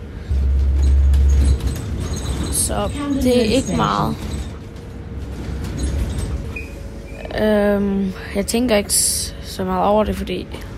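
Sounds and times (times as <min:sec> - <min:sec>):
faint rattles in a moving city bus: 0:00.0 - 0:07.2
low engine rumble of a moving city bus: 0:00.0 - 0:10.7
speech: 0:02.7 - 0:04.3, 0:07.4 - 0:10.7.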